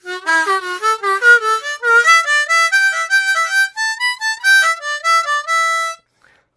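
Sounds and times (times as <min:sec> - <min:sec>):
harmonica playing a scale: 0:00.0 - 0:06.0.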